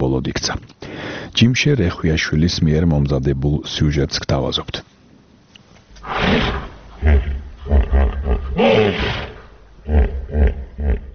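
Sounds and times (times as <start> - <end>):
speech: 0.1 - 4.9, 6.2 - 8.0
16-year-old hippopotamus vocalizing at a zoo: 6.0 - 11.1.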